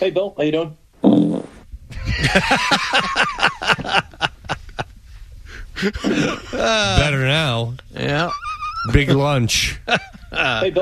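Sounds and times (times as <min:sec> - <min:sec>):
speech: 0:00.0 - 0:01.4, 0:02.2 - 0:04.3, 0:05.8 - 0:10.8
sputtering fart: 0:01.0 - 0:01.7
laughter: 0:01.9 - 0:05.0, 0:05.8 - 0:07.2, 0:08.0 - 0:10.8.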